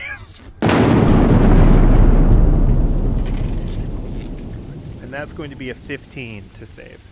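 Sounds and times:
heavy rolling thunder rumble: 0.6s - 7.1s
lightning crack sound effect for a lightning bolt spell: 0.6s - 7.1s
speech: 5.2s - 7.1s.

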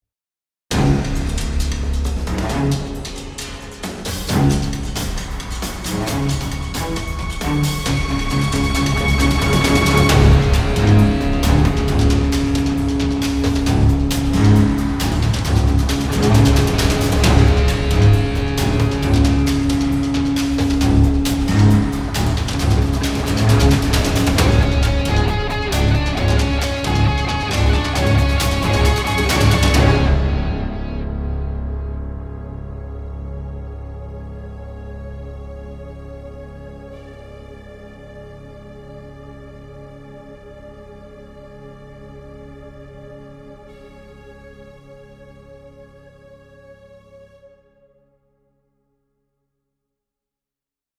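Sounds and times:
fast action percussion: 0.7s - 31.8s
fast action guitar: 9.4s - 32.5s.

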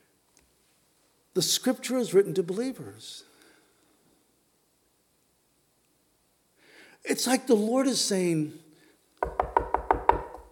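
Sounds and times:
speech: 1.4s - 3.3s, 7.0s - 8.6s
firm knocking on a wooden door: 9.2s - 10.5s.

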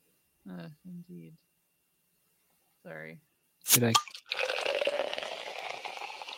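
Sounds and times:
speech: 0.5s - 1.6s, 2.8s - 4.2s
drink pouring into a glass: 3.9s - 6.3s.

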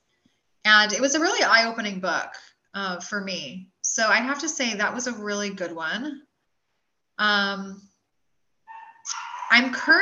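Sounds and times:
speech: 0.7s - 6.3s, 7.2s - 7.9s, 9.1s - 10.0s
dogs barking: 8.7s - 10.0s.

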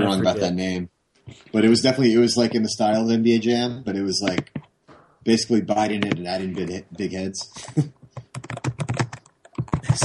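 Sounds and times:
speech: 0.1s - 4.6s, 5.2s - 8.8s
typing on a computer keyboard: 8.1s - 10.0s.

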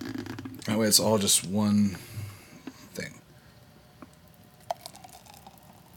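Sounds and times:
speech: 0.7s - 2.2s
thick boozy milkshake poured from a blender into a large wine glass: 4.6s - 5.9s.

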